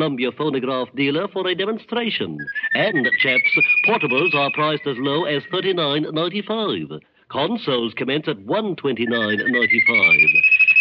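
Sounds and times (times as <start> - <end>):
speech: 0.0 - 10.5
bird whistling: 2.4 - 5.7, 9.0 - 10.8.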